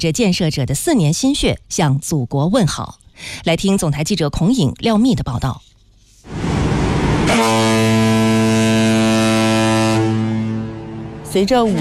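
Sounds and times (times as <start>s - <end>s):
speech: 0.0s - 6.4s, 11.3s - 11.8s
rushing noise: 6.3s - 8.2s
cargo ship horn deep blast at departure: 6.3s - 11.8s.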